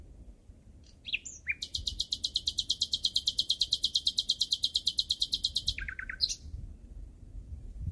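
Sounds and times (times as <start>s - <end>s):
Common nightingale singing: 0.8s - 6.6s.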